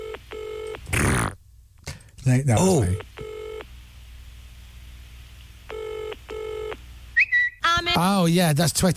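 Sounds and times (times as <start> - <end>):
telephone ringing: 0.0 - 0.8, 2.9 - 3.6, 5.7 - 6.8
speech: 2.3 - 3.2, 8.0 - 8.9.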